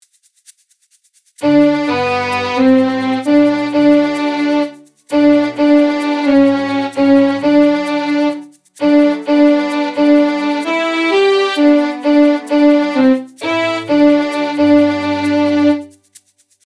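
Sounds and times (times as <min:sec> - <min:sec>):
music piece: 0:01.4 - 0:16.1.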